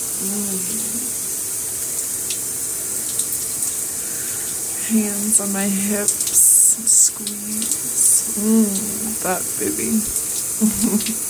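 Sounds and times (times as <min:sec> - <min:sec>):
running shower water: 0:00.0 - 0:11.2
person humming faintly: 0:00.2 - 0:01.2, 0:06.7 - 0:11.2
speech: 0:00.2 - 0:01.2, 0:04.9 - 0:11.2.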